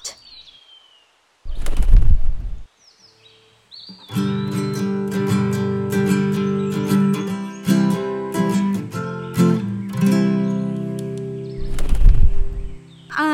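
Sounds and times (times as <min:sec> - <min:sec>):
small bird chirping, possibly a finch: 0:00.0 - 0:05.2, 0:05.9 - 0:13.2
bird wings fluttering: 0:01.5 - 0:02.6.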